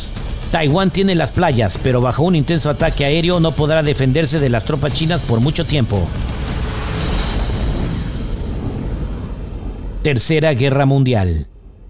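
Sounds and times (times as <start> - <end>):
speech: 0.5 - 6.4, 10.0 - 11.5
series of explosions behind Russian lines in the early morning: 4.8 - 10.9.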